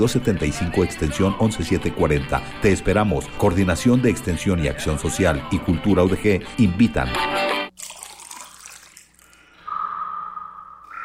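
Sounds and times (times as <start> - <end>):
speech: 0.0 - 7.5
running water trickling: 7.7 - 9.6.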